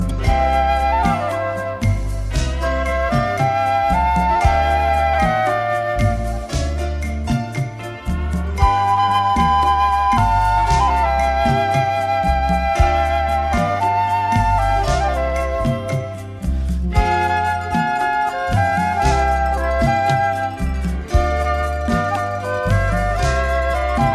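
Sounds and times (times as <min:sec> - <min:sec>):
flute playing: 0:00.0 - 0:24.1.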